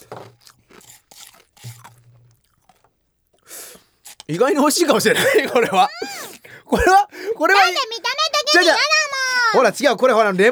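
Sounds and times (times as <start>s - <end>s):
chewing shaved ice with yellow syrup: 0.0s - 7.0s
crunching shaved ice coated in thick yellow syrup: 0.0s - 7.0s
speech: 4.3s - 6.0s, 6.7s - 8.0s, 8.6s - 8.9s, 9.5s - 10.5s
laughter: 4.5s - 10.5s.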